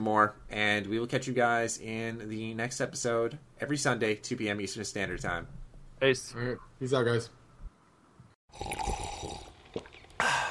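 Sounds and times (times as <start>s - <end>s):
speech: 0.0s - 7.4s, 8.5s - 9.0s
coffee pouring into a cup: 8.5s - 10.2s
slurping sip of coffee: 8.5s - 10.4s.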